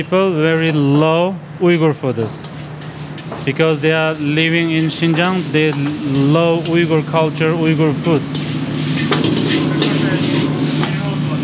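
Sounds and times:
speech: 0.0s - 2.6s, 3.4s - 8.5s, 9.1s - 9.9s
chicken and vegetables sizzling in a hot pan: 2.5s - 11.4s.

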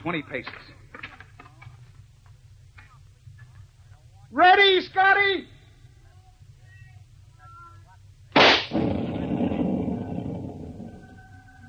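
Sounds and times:
speech: 0.0s - 0.9s, 4.3s - 5.6s
rifle shot: 8.4s - 10.9s
small explosive blast to shake loose rocks blocking a cave entrance: 8.4s - 11.1s
rumbling roar: 8.8s - 11.4s.

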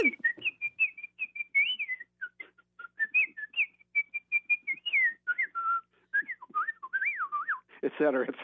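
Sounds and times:
person whistling a bird-like melody imitating a piccolo theme: 0.0s - 7.7s
speech: 7.9s - 8.4s.

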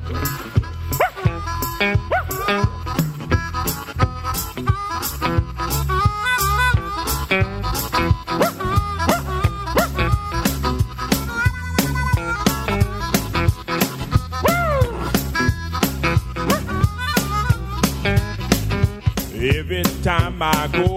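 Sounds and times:
busy continuous music: 0.0s - 20.9s
speech: 0.1s - 0.6s, 20.3s - 20.9s
dog barking: 1.0s - 1.3s, 2.1s - 2.6s, 8.4s - 10.0s.

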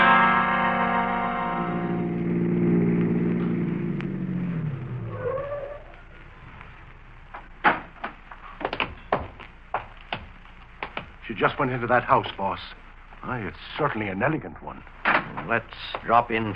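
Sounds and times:
car engine rumbling as the vehicle slows to a stop: 0.2s - 11.6s
speech: 11.4s - 16.5s.

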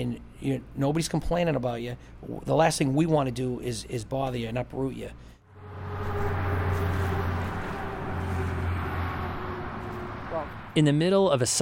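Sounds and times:
speech: 0.0s - 5.4s, 10.8s - 11.5s
roar of cars and trucks on a highway: 5.4s - 11.5s.

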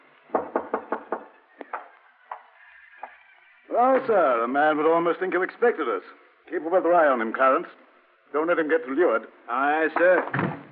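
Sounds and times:
knocking on a wooden door: 0.3s - 2.4s
speech: 3.8s - 10.5s.

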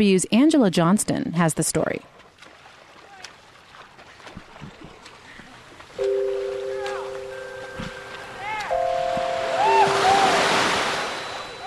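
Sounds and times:
speech: 0.0s - 2.2s
water lapping at the shore of a bay swimming area: 1.8s - 11.6s
faint steady tones: 6.0s - 11.6s.

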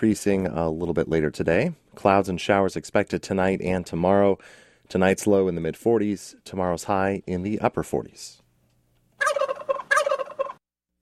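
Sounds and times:
speech: 0.0s - 8.4s
male domestic turkey gobbling in a studio: 9.2s - 10.6s.

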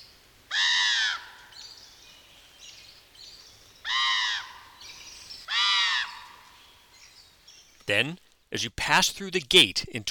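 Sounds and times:
softer common raven calls: 0.0s - 1.8s, 3.8s - 7.0s
speech: 7.9s - 10.0s.

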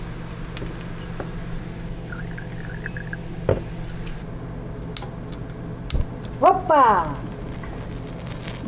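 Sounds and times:
drips: 2.0s - 3.2s
thin stream of Everclear alcohol pouring into a small glass carafe: 2.1s - 3.3s
speech: 6.4s - 7.2s.

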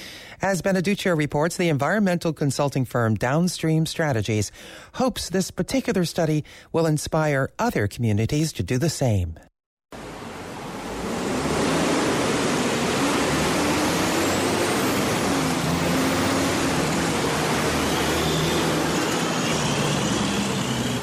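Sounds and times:
speech: 0.4s - 9.5s
heavy traffic roar of cars, buses and trucks at a busy intersection: 10.0s - 21.0s.

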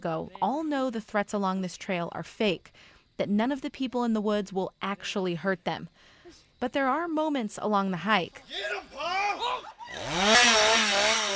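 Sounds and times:
speech: 0.0s - 11.2s
laughter: 8.3s - 10.4s
chainsaw engine revving: 9.9s - 11.3s.

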